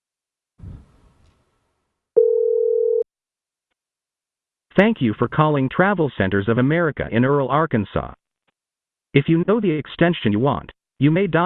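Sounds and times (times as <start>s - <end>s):
telephone dial tone on a call to a truck stop fuel desk: 2.2s - 3.0s
speech: 4.8s - 8.2s, 9.1s - 11.4s.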